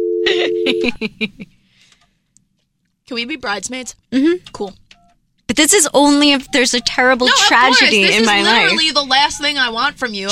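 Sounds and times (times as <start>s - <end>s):
steady low telephone tone: 0.0s - 0.9s
laughter: 0.3s - 1.5s, 7.1s - 9.0s
speech: 0.3s - 1.6s, 3.1s - 4.8s, 5.5s - 10.2s.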